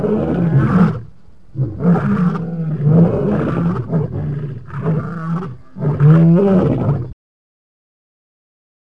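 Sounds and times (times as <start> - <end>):
lion roaring: 0.0 - 7.2.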